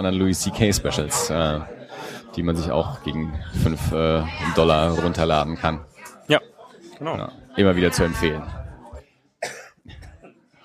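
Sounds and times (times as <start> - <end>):
speech: 0.0 - 8.6
low voices talking: 0.0 - 9.1
person coughing: 9.4 - 10.2.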